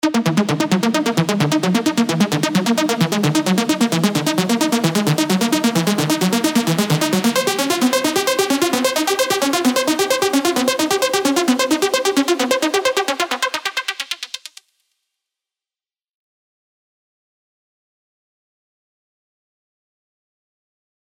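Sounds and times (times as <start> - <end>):
tech house Serum synth arpeggios: 0.0 - 14.6.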